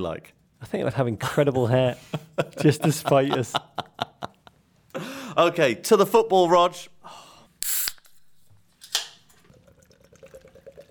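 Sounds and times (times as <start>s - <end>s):
speech: 0.0s - 4.0s, 5.4s - 7.2s
Guinness beer being poured: 7.6s - 10.8s.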